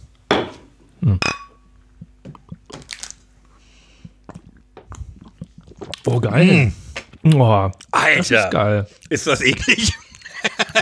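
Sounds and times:
glasses clinking in a toast: 0:01.2 - 0:01.7
person taking small sips: 0:01.9 - 0:06.1, 0:07.8 - 0:09.2
speech: 0:06.0 - 0:10.0
laughter: 0:09.3 - 0:10.8.

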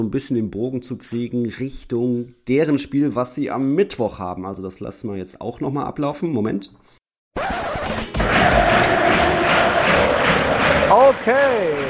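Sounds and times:
speech: 0:00.0 - 0:06.9, 0:11.0 - 0:11.8
football fans cheering in a stadium: 0:08.1 - 0:11.8
individual fans shouting: 0:08.1 - 0:11.8.

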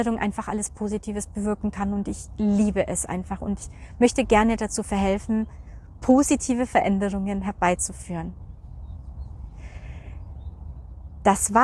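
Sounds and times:
speech: 0:00.0 - 0:08.5, 0:11.2 - 0:11.6
steady low outdoor rumble: 0:00.0 - 0:11.6
faint scattered bird chirps: 0:08.4 - 0:11.3.

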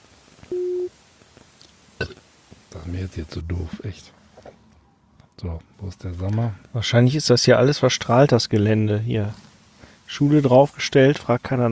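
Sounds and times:
electronic call tone calling a mobile phone: 0:00.5 - 0:00.9
speech: 0:02.9 - 0:04.2, 0:05.4 - 0:09.5, 0:10.1 - 0:11.7.

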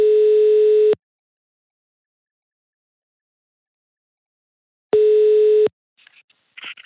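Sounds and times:
telephone ringback tone: 0:00.0 - 0:01.0, 0:05.0 - 0:05.7.

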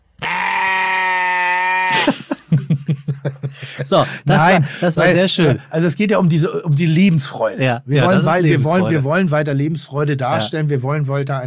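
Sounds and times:
sheep bleating used as a censor bleep: 0:00.2 - 0:02.0
laughter: 0:01.9 - 0:05.8, 0:08.0 - 0:09.0
speech: 0:03.9 - 0:11.4.

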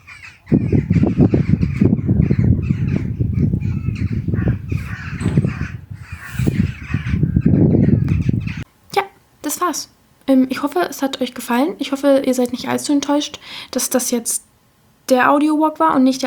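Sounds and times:
harsh caw-like bird cries: 0:00.0 - 0:08.6
speech: 0:09.7 - 0:14.5, 0:15.1 - 0:16.2.

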